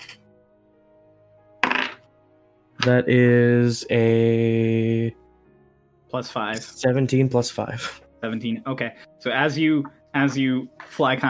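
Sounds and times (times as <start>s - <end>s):
dice clattering onto a table during a tabletop role-playing game: 1.6s - 2.0s
speech: 2.8s - 5.2s, 6.1s - 11.2s.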